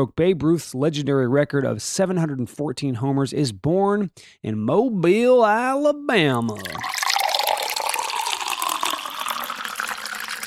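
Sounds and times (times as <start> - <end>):
speech: 0.0 - 7.0
water cooler filling a container and glugging: 6.4 - 10.4.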